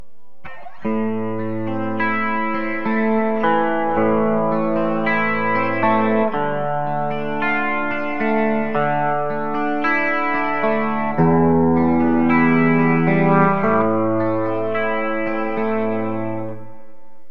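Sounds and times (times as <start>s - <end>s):
clean guitar bridge: 0.0s - 17.3s.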